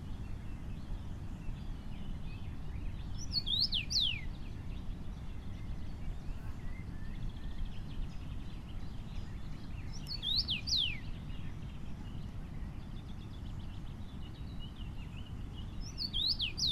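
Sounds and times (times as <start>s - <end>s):
Common rosefinch song of clear slurred whistles in Essenbach, Germany: 0.2s - 16.7s.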